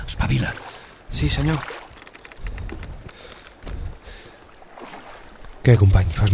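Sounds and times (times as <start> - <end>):
oars rowing a boat carrying soldiers toward shore: 0.0 - 6.3
water splashing: 0.0 - 6.3
speech: 0.3 - 1.8, 5.6 - 6.3.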